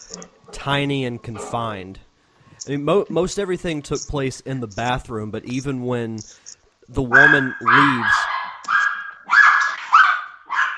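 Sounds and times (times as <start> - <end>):
speech: 0.1 - 8.2
dogs barking in high-pitched whiny bursts: 7.1 - 10.7.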